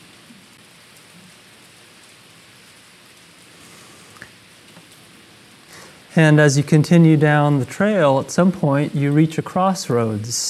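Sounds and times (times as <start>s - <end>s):
steady rain pouring: 0.0s - 10.4s
speech: 6.2s - 10.4s.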